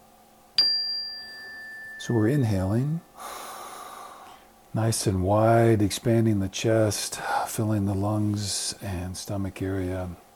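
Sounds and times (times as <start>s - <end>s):
meditation chime struck with bright metallic ring: 0.6s - 3.1s
speech: 2.0s - 3.1s, 4.7s - 10.2s.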